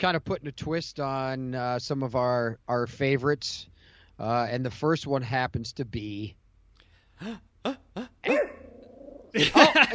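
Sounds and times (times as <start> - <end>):
speech: 0.0 - 6.4, 7.2 - 8.5, 9.3 - 9.9
dog barking excitedly: 8.2 - 8.7
dog giving a drawn-out yelp: 8.2 - 9.4
laughter: 9.4 - 9.9.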